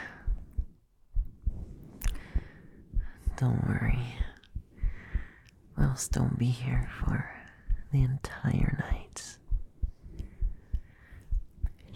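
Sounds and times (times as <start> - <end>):
human heartbeat: 0.0 - 11.9
light hum: 0.0 - 11.9
speech: 3.4 - 4.3, 5.8 - 9.4.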